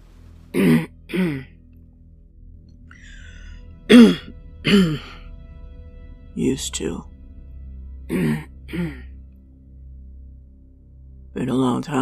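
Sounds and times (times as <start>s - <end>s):
man clearing throat: 3.9s - 5.2s, 8.1s - 9.0s
speech: 4.6s - 5.0s, 6.4s - 7.1s, 11.5s - 12.0s.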